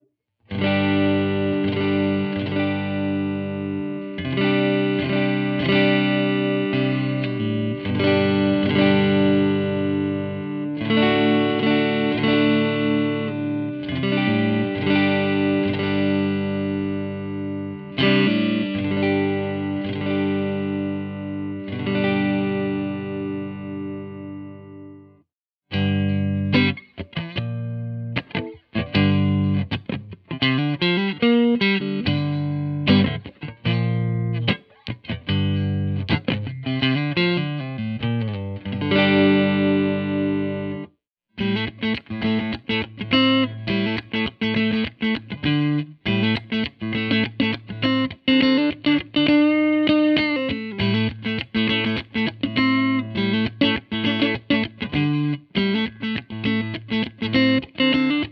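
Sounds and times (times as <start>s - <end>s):
clean electric guitar through pickups: 0.0s - 58.3s.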